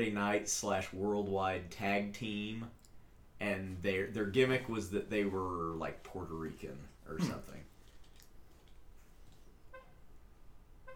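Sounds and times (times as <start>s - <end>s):
speech: 0.0s - 2.8s, 3.4s - 7.7s
car horn chirps from remote locking: 9.7s - 10.0s.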